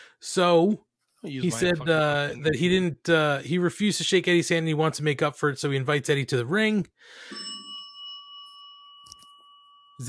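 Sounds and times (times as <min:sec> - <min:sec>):
speech: 0:00.2 - 0:07.5
bell ringing: 0:07.2 - 0:10.0.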